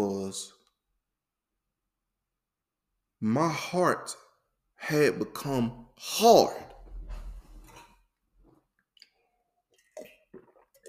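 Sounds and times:
speech: 0.0s - 0.6s, 3.2s - 4.2s, 4.8s - 6.7s
person drinking water: 8.8s - 10.8s.

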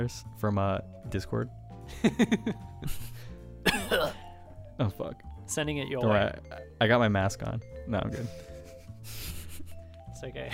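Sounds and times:
speech: 0.0s - 4.0s, 4.8s - 9.3s, 10.2s - 10.5s
person coughing: 3.6s - 4.4s.

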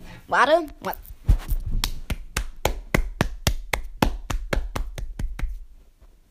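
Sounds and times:
speech: 0.3s - 1.1s
steady hand clapping: 1.8s - 5.7s.

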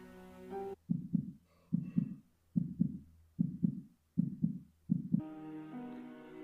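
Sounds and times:
heartbeat muffled through a door: 0.8s - 5.2s.

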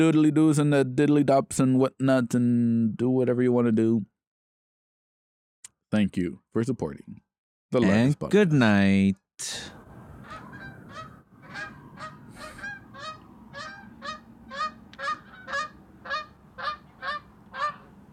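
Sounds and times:
speech: 0.0s - 4.1s, 5.9s - 9.8s
flock of geese honking: 10.2s - 18.1s.

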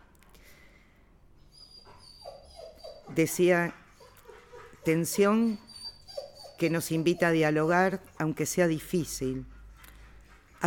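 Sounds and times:
dog whimpering with a thin high-pitched whine: 1.4s - 9.4s
speech: 3.2s - 3.8s, 4.8s - 5.6s, 6.6s - 9.5s.

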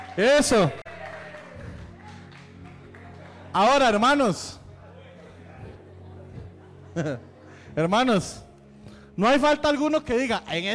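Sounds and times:
church audience applauding: 0.0s - 4.2s
speech: 0.2s - 0.8s, 3.6s - 4.6s, 7.0s - 8.4s, 9.2s - 10.7s
laughter: 1.0s - 4.1s, 4.7s - 7.8s.

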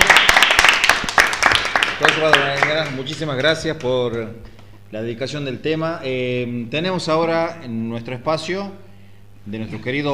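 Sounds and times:
applause: 0.0s - 4.2s
speech: 2.2s - 10.1s.

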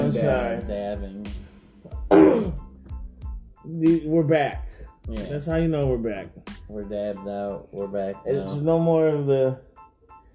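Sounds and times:
speech: 0.1s - 2.6s, 3.6s - 9.7s
rough coughing and hacking after a dab: 2.0s - 2.8s
harsh rasping throat clearing after a dab: 2.1s - 2.7s.

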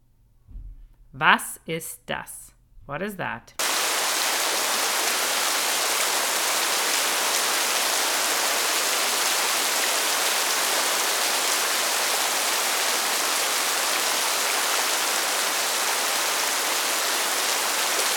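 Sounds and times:
speech: 1.2s - 3.6s
rain falling: 3.6s - 18.1s.

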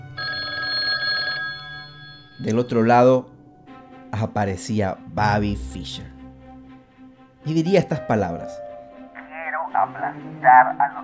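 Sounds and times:
old-style telephone bell ringing at the United States chess federation: 0.0s - 2.9s
speech: 2.4s - 3.3s, 4.1s - 6.2s, 7.4s - 8.6s, 9.8s - 11.0s.

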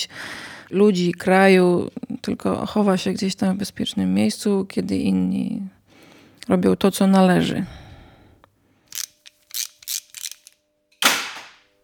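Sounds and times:
speech: 0.0s - 5.8s, 6.4s - 7.8s
ratchet wrench ratcheting while turning screws: 8.9s - 10.6s.

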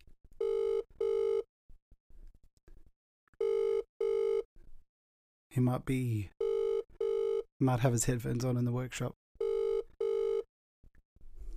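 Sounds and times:
phone ringing through a speakerphone: 0.4s - 1.5s, 3.4s - 4.5s, 6.4s - 7.5s, 9.4s - 10.5s
speech: 5.6s - 6.4s, 7.6s - 9.2s.

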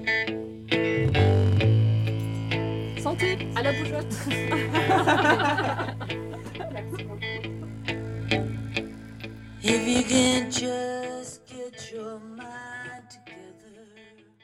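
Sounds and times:
rock song playing from a recording: 0.0s - 11.5s
speech: 3.3s - 5.9s, 9.8s - 10.9s
laughter: 3.6s - 7.9s.

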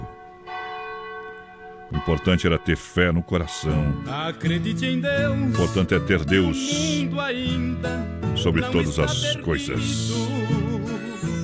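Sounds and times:
large cathedral church bell ringing: 0.0s - 4.4s
speech: 1.9s - 11.1s.

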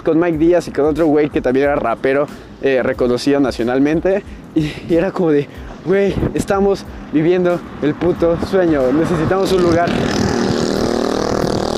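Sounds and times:
speech: 0.0s - 10.4s
motorcycle engine revving and roaring past outside: 6.6s - 11.7s.

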